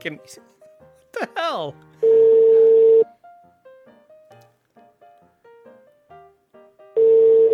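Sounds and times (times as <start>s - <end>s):
speech: 0.0s - 0.6s, 1.2s - 2.2s
telephone ringback tone on an outgoing call to Bangladesh: 2.0s - 3.1s, 7.0s - 7.5s.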